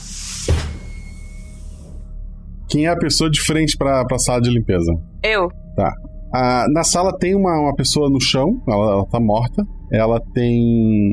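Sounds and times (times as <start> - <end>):
steady low hum: 0.0 - 11.1
door opening with a solid clunk: 0.4 - 1.3
speech: 2.7 - 11.1.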